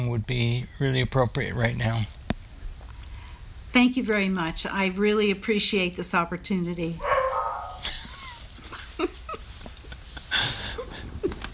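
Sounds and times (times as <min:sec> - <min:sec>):
speech: 0:00.1 - 0:02.2, 0:03.7 - 0:07.1
female dog barking: 0:07.0 - 0:07.8
dog whiny yelps: 0:07.0 - 0:07.9.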